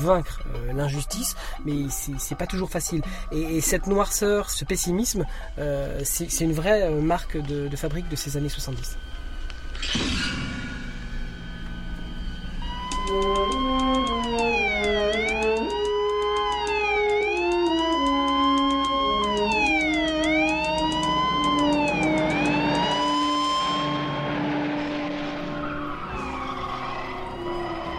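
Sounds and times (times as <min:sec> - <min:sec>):
speech: 0:00.0 - 0:09.1, 0:09.8 - 0:10.3, 0:13.1 - 0:13.9
police sirens wailing in a film car chase: 0:00.0 - 0:09.8, 0:10.6 - 0:27.9
car engines roaring in a film car chase: 0:11.2 - 0:27.9.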